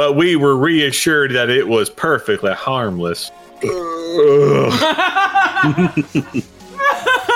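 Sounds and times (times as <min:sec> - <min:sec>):
speech: 0:00.1 - 0:06.5
forced fake burp: 0:03.6 - 0:04.8
bursting laughter: 0:04.6 - 0:07.3.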